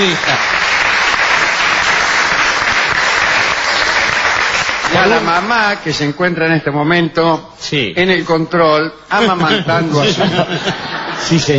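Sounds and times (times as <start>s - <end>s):
speech: 0.0s - 0.7s, 5.0s - 11.5s
applause from a group celebrating a newborn's birth: 0.0s - 5.9s
laughter: 9.2s - 11.5s.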